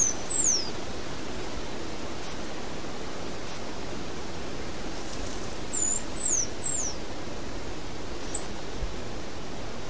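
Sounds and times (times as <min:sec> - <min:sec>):
half-collared sparrow Arremon semitorquatus song: 0:00.0 - 0:00.8, 0:02.2 - 0:02.6, 0:03.4 - 0:03.7, 0:05.1 - 0:07.1, 0:08.2 - 0:08.6
steady hiss: 0:00.0 - 0:09.8.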